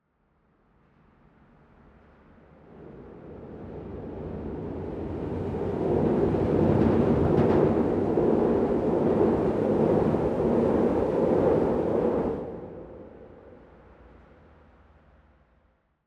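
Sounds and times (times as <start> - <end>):
rapid transit train on open air track over expressway: 2.6 - 14.3.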